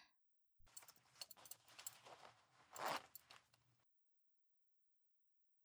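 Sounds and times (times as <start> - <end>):
breathy rustle: 0.7 - 3.6
zipper being pulled down: 0.7 - 3.6.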